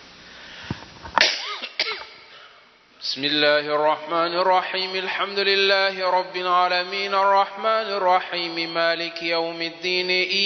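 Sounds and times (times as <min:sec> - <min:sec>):
harsh coughing: 0:01.2 - 0:02.5
speech: 0:03.1 - 0:10.4.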